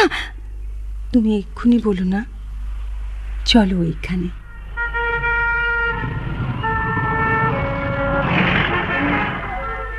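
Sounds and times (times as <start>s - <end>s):
heavy traffic at a busy complicated city crossing: 0.0s - 9.9s
speech: 1.1s - 2.4s, 3.4s - 4.4s
long steady car horn tones: 4.4s - 9.9s.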